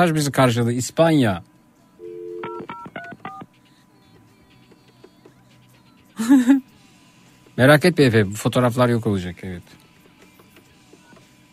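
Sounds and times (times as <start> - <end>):
speech: 0.0 - 1.5, 6.2 - 6.7, 7.6 - 9.8
phone tone of an outgoing call: 2.0 - 3.4
laughter: 6.2 - 6.6.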